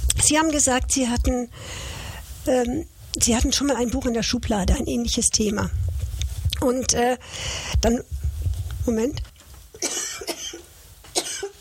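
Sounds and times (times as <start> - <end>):
speech: 0.2 - 5.9, 6.6 - 8.2, 8.9 - 9.3
dry sharp coughs: 9.8 - 11.5.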